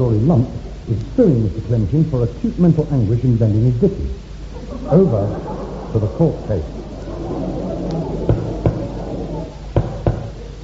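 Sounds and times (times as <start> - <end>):
speech: 0.0 - 6.8
faint low hum: 0.0 - 10.6
laughter: 4.5 - 10.6
knocking on a door: 8.3 - 8.9, 9.8 - 10.4.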